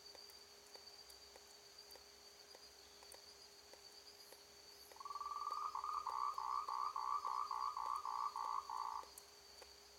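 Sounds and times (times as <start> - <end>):
frog calling at night: 5.0 - 9.1.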